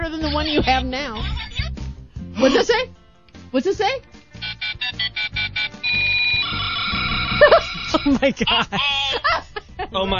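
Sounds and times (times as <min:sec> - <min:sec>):
speech: 0:00.2 - 0:01.5, 0:02.4 - 0:04.1, 0:07.4 - 0:09.3, 0:09.9 - 0:10.1
toy cell phone ringing with electronic beeps and tinny melody: 0:04.4 - 0:08.1
laughter: 0:07.2 - 0:10.1.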